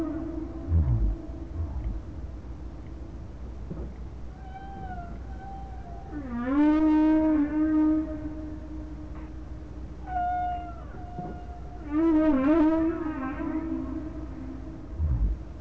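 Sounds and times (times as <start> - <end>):
whale calls: 0.0 - 2.2, 4.4 - 9.4, 10.0 - 15.5.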